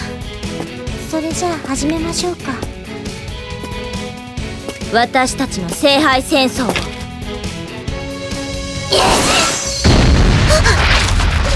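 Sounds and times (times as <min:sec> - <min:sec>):
faint music: 0:00.0 - 0:08.1
speech: 0:01.1 - 0:02.6, 0:04.9 - 0:06.9
explosion: 0:08.9 - 0:11.5
deep rumbling boom: 0:09.8 - 0:11.5.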